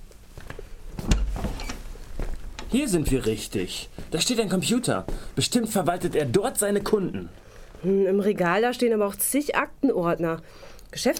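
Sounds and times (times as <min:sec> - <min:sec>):
quiet hiss: 0:00.0 - 0:11.1
door being opened into a shop owner's office with click and scrape: 0:01.0 - 0:01.8
speech: 0:02.7 - 0:11.1.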